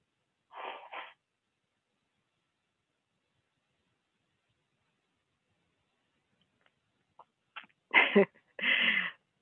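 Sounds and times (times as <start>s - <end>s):
person blowing their nose: 0.5s - 1.2s
person sniffing: 0.5s - 1.2s.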